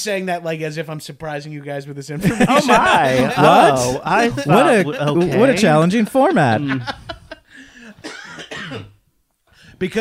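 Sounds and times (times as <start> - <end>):
speech: 0.0 - 7.1, 9.8 - 9.9
laughter: 2.2 - 8.0
person coughing: 7.8 - 9.0.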